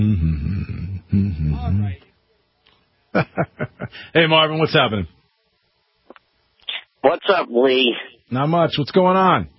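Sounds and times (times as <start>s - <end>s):
person humming in a low buzzy tone: 0.0s - 2.0s
speech: 3.1s - 5.2s, 7.0s - 9.5s.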